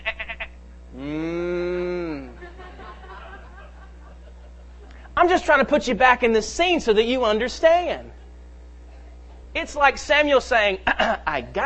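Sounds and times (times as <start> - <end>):
sheep bleating: 0.0 - 0.6
laughter: 2.0 - 5.1
speech: 5.4 - 8.2, 9.6 - 11.6.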